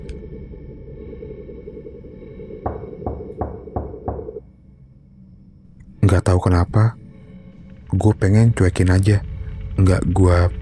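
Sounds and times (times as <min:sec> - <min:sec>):
constant low droning hum: 0:00.0 - 0:10.6
slow dull knocks on a door at night: 0:02.6 - 0:04.4
speech: 0:06.1 - 0:07.0, 0:07.9 - 0:10.6.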